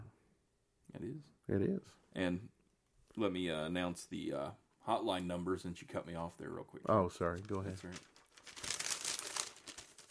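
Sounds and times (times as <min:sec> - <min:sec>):
speech: 0:01.0 - 0:02.6, 0:03.2 - 0:08.6
paper rattling and crumpling: 0:06.9 - 0:10.0.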